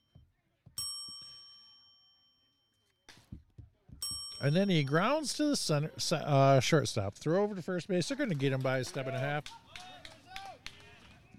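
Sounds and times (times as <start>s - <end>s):
bright metallic bell ding: 0.8s - 3.0s, 4.0s - 5.4s
speech: 4.4s - 9.9s.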